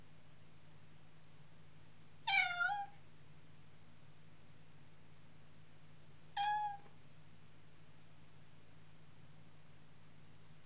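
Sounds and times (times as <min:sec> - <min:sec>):
cat giving a short clear miaow: 0:02.3 - 0:03.0, 0:06.4 - 0:06.9.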